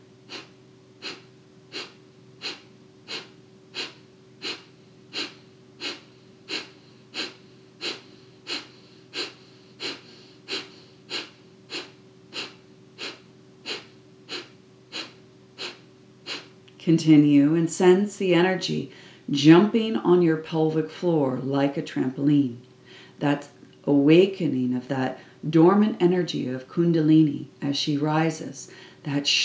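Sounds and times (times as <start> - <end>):
short forceful exhales through the nose in Kapalabhati breathing: 0.3 - 16.5
speech: 16.9 - 29.4.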